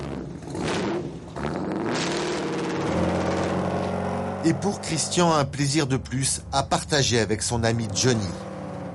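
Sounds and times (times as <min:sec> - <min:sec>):
modernized 1930s hot rod car engine revving: 0:00.0 - 0:08.9
speech: 0:04.4 - 0:08.5.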